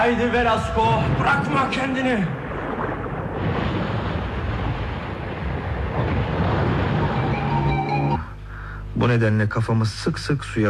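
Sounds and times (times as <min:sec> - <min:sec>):
faint tonal hum: 0:00.0 - 0:02.2, 0:06.8 - 0:10.6
speech: 0:00.0 - 0:02.4, 0:09.0 - 0:10.6
open-sea waves churning in a roaring wash: 0:00.0 - 0:08.3.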